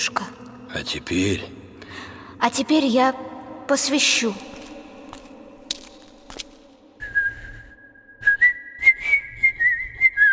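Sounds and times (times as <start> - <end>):
speech: 0.8 - 1.6, 2.4 - 4.5
person whistling a slow tune in a chapel: 7.0 - 10.3.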